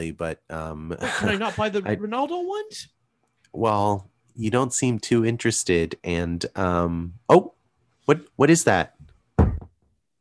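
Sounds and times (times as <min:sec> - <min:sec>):
speech: 0:00.0 - 0:09.0
laughter: 0:00.9 - 0:02.1
quick heavy knocks on a door: 0:09.4 - 0:09.8.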